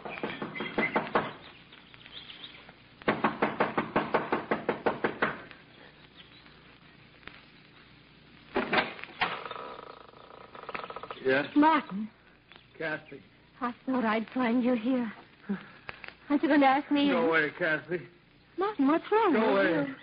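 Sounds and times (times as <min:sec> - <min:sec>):
woman knocking impatiently on the wooden front door of a mountain lodge: 0:00.1 - 0:01.4, 0:03.1 - 0:05.4
speech: 0:11.3 - 0:12.2, 0:12.8 - 0:15.7, 0:16.3 - 0:20.0.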